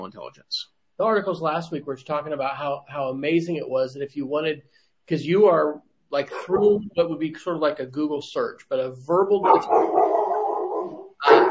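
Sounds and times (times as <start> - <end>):
speech: 0.0 - 10.0
dog giving a long drawn-out bark-like howl: 9.4 - 11.4.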